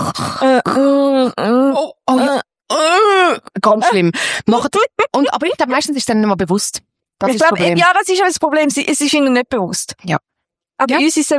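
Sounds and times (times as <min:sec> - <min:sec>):
voice imitating loud noisy breathing: 0:00.0 - 0:02.2
speech: 0:00.4 - 0:01.4, 0:03.6 - 0:11.3.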